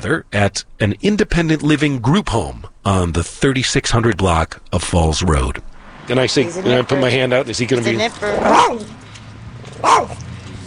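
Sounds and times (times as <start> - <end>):
speech: 0.0 - 9.0, 9.8 - 10.2
black-and-white rat terrier chihuahua mix barking: 8.2 - 8.9, 9.8 - 10.2.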